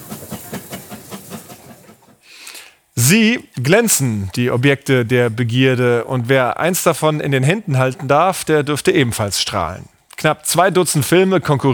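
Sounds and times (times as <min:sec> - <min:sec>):
steam locomotive in the Harz mountains chuffing: 0:00.0 - 0:02.6
constant hiss of steam from a steam locomotive: 0:00.0 - 0:02.9
speech: 0:03.0 - 0:11.7.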